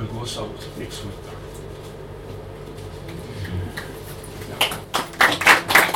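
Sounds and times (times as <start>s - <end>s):
speech: 0.2s - 1.4s
audience clapping: 3.7s - 5.9s.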